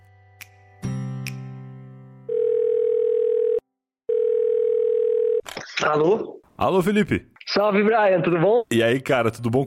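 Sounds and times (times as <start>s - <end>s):
telephone tone: 2.3s - 5.4s
speech: 5.8s - 9.6s.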